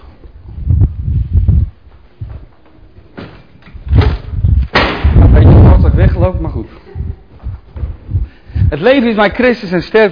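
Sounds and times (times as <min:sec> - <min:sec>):
heavy footsteps: 0:00.0 - 0:09.1
door pushed shut with a sharp bang and rattling: 0:03.2 - 0:05.4
speech: 0:08.8 - 0:10.1.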